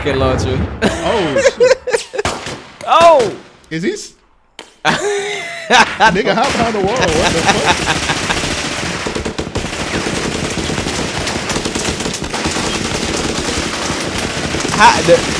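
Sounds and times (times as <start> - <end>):
speech: 0.0 - 4.2, 4.8 - 8.2, 14.8 - 15.3
laughter: 0.8 - 2.3, 4.9 - 8.6
rapid automatic gunfire: 6.4 - 15.3.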